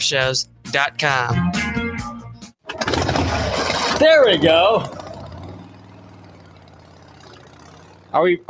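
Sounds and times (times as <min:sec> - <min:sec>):
speech: 0:00.0 - 0:01.8, 0:03.3 - 0:05.0, 0:08.1 - 0:08.4
old motorcycle engine running: 0:02.7 - 0:08.4.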